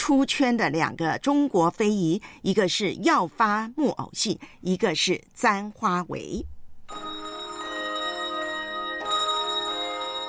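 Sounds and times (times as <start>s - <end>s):
speech: 0.0s - 7.3s
bells ringing: 6.9s - 10.2s.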